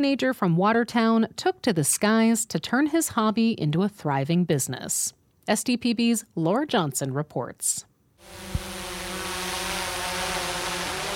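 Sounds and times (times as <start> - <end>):
speech: 0.0 - 8.6
aerial surveillance drone propellers whirring: 8.2 - 11.1.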